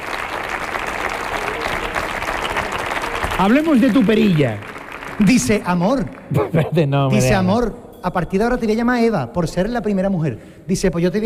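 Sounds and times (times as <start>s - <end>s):
sustained audience applause: 0.0s - 6.4s
speech: 3.4s - 11.2s.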